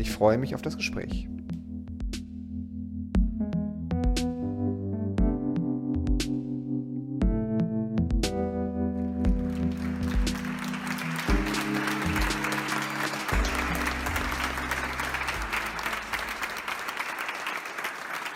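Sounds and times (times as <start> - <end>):
speech: 0.0 - 1.4
low musical backing: 0.0 - 17.1
crowd applauding: 9.3 - 18.3.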